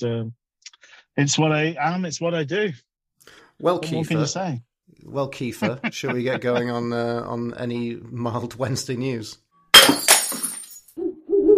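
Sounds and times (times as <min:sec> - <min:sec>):
speech: 0:00.0 - 0:00.4, 0:01.2 - 0:10.0
laughter: 0:05.5 - 0:07.1
glass breaking with scattering shards: 0:09.8 - 0:10.9.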